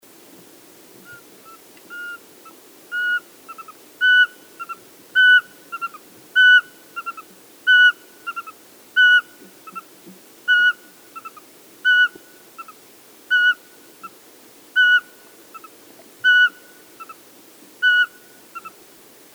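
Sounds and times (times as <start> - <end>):
Eurasian pygmy owl: 1.1 - 9.8, 10.5 - 13.6, 14.8 - 17.2, 17.8 - 18.7.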